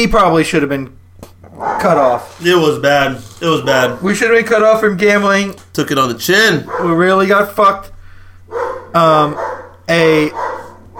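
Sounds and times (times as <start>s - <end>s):
speech: 0.0s - 1.0s, 1.8s - 7.9s, 8.9s - 10.5s
steady low hum: 0.0s - 10.9s
loud drawn-out dog barks: 1.5s - 2.1s, 6.6s - 7.1s, 8.5s - 10.9s.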